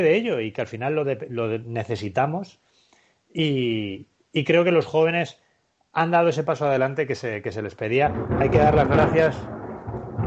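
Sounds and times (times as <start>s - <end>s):
speech: 0.0s - 2.7s, 3.3s - 5.4s, 6.0s - 10.0s
faint rain hiss: 0.0s - 10.2s
deep rolling rumble of thunder: 8.0s - 10.2s.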